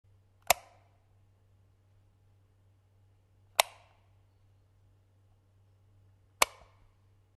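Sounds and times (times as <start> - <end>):
lights switching on and off: 0.4 - 1.0, 3.5 - 4.1, 6.3 - 6.9.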